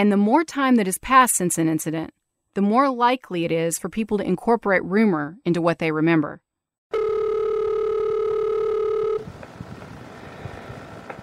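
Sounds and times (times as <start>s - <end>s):
speech: 0.0s - 7.0s
telephone line ringing with a loud steady electronic tone: 6.9s - 9.3s.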